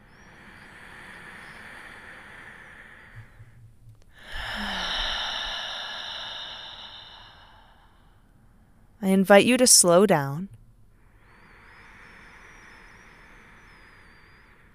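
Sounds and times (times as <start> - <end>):
slow deep breathing during a guided relaxation exercise: 0.0 - 9.0, 10.9 - 14.7
speech: 9.1 - 10.6.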